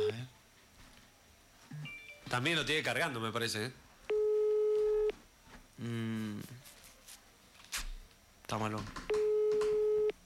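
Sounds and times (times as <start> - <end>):
speech: 2.3 - 3.8, 5.8 - 6.6, 8.5 - 9.1
electronic ringback tones of a phone call: 4.1 - 5.1, 9.1 - 10.2.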